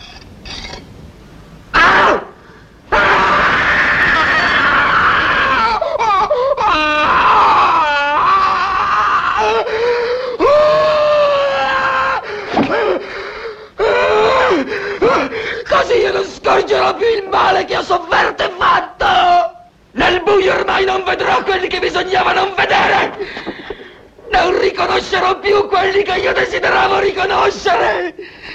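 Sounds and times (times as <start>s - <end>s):
man screaming and wailing in agony in a film of a Greek tragedy: 1.8s - 13.1s, 13.8s - 28.2s.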